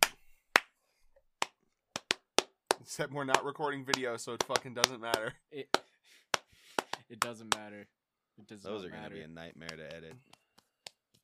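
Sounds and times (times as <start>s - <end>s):
hand claps for audio sync: 0.0s - 0.8s, 1.4s - 7.7s, 9.6s - 11.2s
speech: 2.8s - 6.2s, 7.1s - 10.4s.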